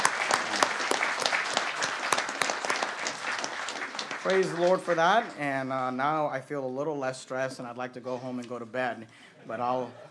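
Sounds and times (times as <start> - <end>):
church audience applause: 0.0 - 5.5
speech: 4.2 - 10.0.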